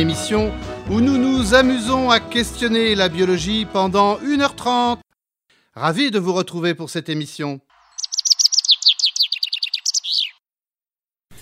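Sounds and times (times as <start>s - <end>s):
speech: 0.0s - 5.0s, 5.8s - 7.7s
seabird calling in sharp piping notes: 7.9s - 10.4s.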